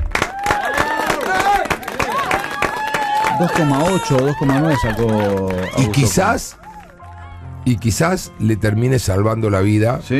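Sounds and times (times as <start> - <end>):
small group applauding: 0.0 - 7.5
people cheering and whooping: 0.1 - 7.6
speech: 3.4 - 6.6, 7.7 - 10.1.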